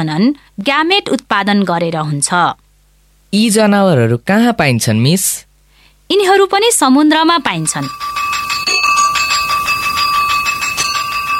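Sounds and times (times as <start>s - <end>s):
speech: 0.0s - 2.6s, 3.3s - 5.5s, 6.1s - 8.2s
school bell ringing at the end of a class period: 7.3s - 11.3s.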